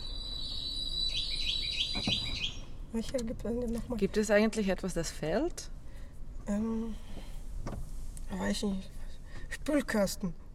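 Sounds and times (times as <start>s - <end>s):
high bird chirps: 0.0s - 2.8s
speech: 2.0s - 2.3s, 2.9s - 5.8s, 6.5s - 9.0s, 9.6s - 10.4s
soft hiss: 2.5s - 10.5s.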